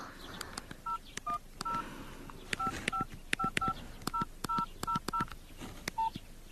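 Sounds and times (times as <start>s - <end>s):
faint keypad clicks: 0.3s - 6.0s
telephone keypad tones as a number is dialed: 2.6s - 5.3s.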